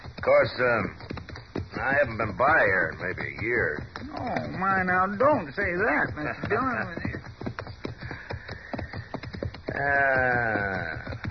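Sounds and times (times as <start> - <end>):
dull horse hoof clops: 0.0 - 11.2
speech: 0.2 - 1.1, 1.8 - 7.1, 9.8 - 11.0.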